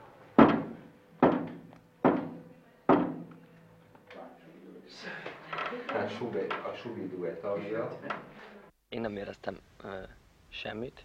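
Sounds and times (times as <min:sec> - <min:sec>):
hard hollow knocks in answer to a yes-or-no question: 0:00.4 - 0:03.3
speech: 0:06.0 - 0:11.0.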